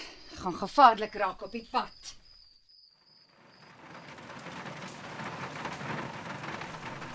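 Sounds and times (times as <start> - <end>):
speech: 0.4 - 2.2
heavy rain pouring: 3.3 - 7.1.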